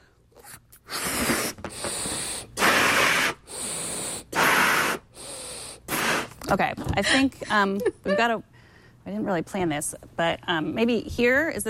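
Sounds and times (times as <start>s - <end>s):
person inhaling: 0.0s - 6.4s, 8.5s - 9.0s
balloon being blown up with long forceful breaths: 0.4s - 6.4s
speech: 6.5s - 11.6s.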